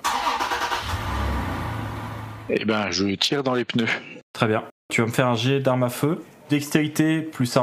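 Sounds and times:
car engine cranking and starting then rumbling: 0.0 - 2.6
speech: 2.5 - 7.6.

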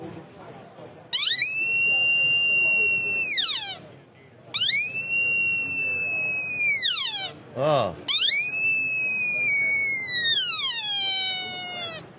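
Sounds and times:
sika deer bugling with a high-pitched whistle: 1.2 - 3.8, 4.6 - 7.4, 8.1 - 12.1
speech: 7.6 - 8.1.

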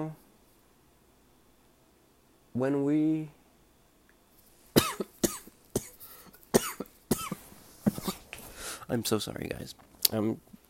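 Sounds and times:
speech: 0.0 - 0.2, 2.6 - 3.4, 8.9 - 10.6
harsh coughing fit: 4.8 - 8.3
raspy breaths: 6.0 - 6.5, 7.9 - 8.9.

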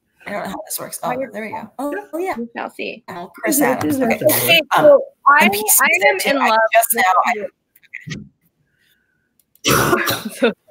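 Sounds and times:
speech: 0.3 - 8.2, 9.6 - 10.6
short throaty noise: 4.1 - 4.8
loud harsh cough: 4.2 - 4.6, 9.6 - 10.6.

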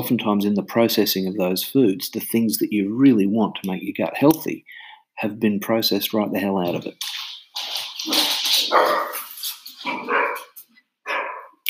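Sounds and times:
speech: 0.0 - 9.1
dogs barking: 8.0 - 11.6.

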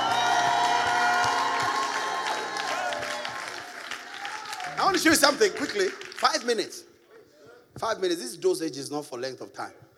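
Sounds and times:
crowd shouting and cheering: 0.0 - 5.6
crowd clapping in applause: 0.0 - 6.7
speech: 4.9 - 6.9, 7.8 - 9.8.

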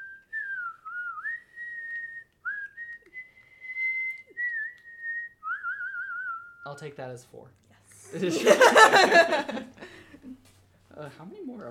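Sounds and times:
person whistling a tune loudly: 0.0 - 6.7
speech: 6.6 - 11.6
laughter: 8.1 - 10.4.

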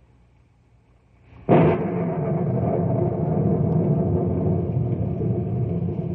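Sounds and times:
thunderclap from thunderheads over knotty pine country rolling into rumble: 1.3 - 6.1.

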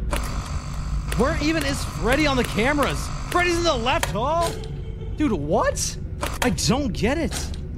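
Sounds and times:
video game security door grinding shut: 0.1 - 4.6
speech: 1.2 - 7.6.

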